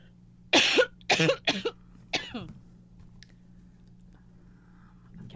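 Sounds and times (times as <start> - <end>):
coughing: 0.5 - 2.6
speech: 1.2 - 2.6.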